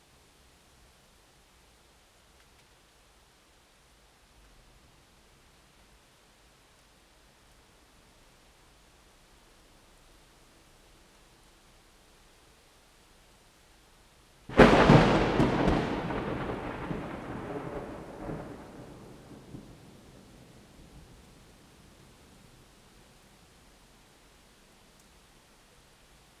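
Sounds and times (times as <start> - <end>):
strong loud thunder crack: 14.5 - 20.2.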